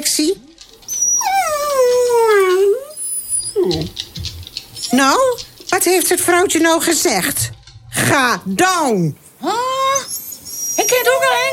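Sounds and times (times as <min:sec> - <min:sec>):
speech: 0:00.1 - 0:00.6, 0:04.9 - 0:09.6, 0:10.9 - 0:11.5
rough-haired dog whining and howling: 0:00.6 - 0:05.6, 0:09.5 - 0:11.5.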